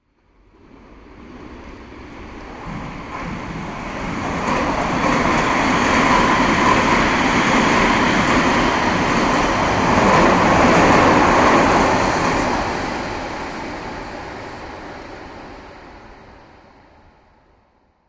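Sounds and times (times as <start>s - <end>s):
subway train: 0.0s - 18.0s.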